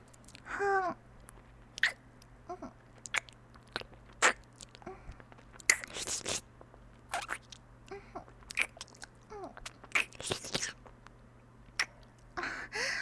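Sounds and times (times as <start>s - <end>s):
person chewing and biting soft food: 0.0s - 0.5s, 2.9s - 7.6s, 8.2s - 12.2s
faint steady hum: 0.0s - 13.0s.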